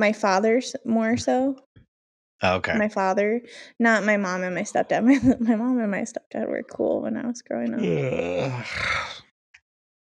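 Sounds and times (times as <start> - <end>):
speech: 0.0 - 1.7, 2.4 - 9.2
person yawning: 7.8 - 9.2.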